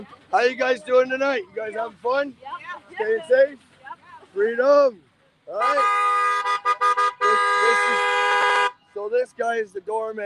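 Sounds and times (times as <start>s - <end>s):
speech: 0.0s - 3.7s, 4.4s - 7.0s, 9.0s - 10.2s
car horn honking: 5.5s - 9.0s.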